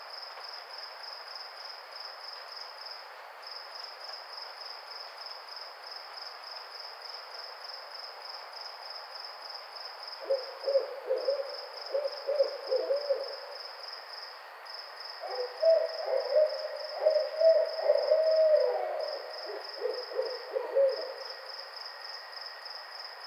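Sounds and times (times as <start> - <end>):
pulsing insect chorus: 0.0 - 23.2
barred owl hooting: 10.2 - 13.6, 15.2 - 21.3.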